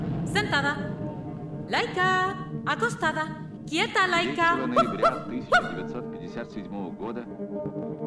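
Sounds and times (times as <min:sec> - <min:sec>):
speech: 0:00.4 - 0:01.0, 0:01.7 - 0:08.0
murmuring voice-like sounds: 0:04.2 - 0:07.2
dog barking: 0:04.7 - 0:05.9.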